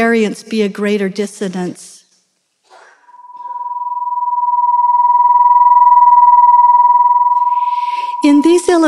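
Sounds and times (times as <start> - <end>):
speech: 0.0 - 1.9, 8.3 - 8.8
two nearly matching pure tones beating in an electronic hum: 3.2 - 8.8.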